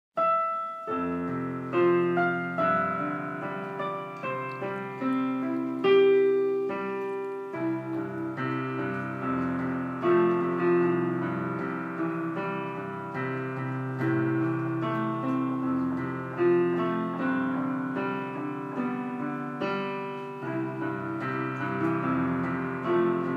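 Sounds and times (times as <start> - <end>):
instrumental hymn: 0.2 - 23.3.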